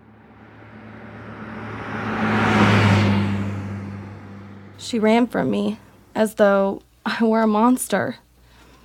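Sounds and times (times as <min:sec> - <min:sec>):
truck engine passing on a road in the Texas prairies: 0:00.0 - 0:06.1
speech: 0:04.9 - 0:08.3.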